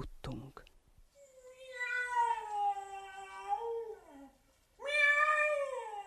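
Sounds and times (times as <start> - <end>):
cat meowing in a castle cellar: 1.4 - 4.0, 4.8 - 6.0.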